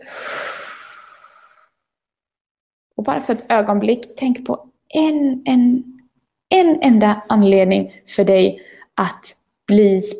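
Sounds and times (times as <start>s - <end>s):
slow breathy exhale after a deep breath during a breathing exercise: 0.0s - 1.8s
speech: 3.0s - 10.1s.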